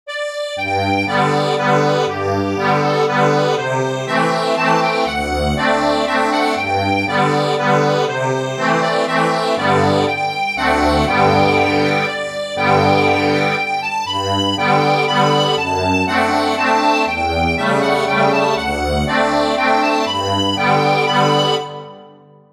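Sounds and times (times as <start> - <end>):
accordion playing a waltz: 0.1 - 22.1.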